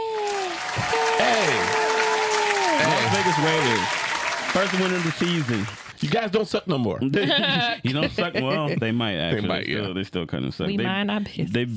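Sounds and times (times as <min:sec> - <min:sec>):
crowd applause: 0:00.0 - 0:06.3
laughter: 0:00.9 - 0:03.9, 0:04.5 - 0:06.3, 0:07.0 - 0:10.8
speech: 0:03.1 - 0:11.7.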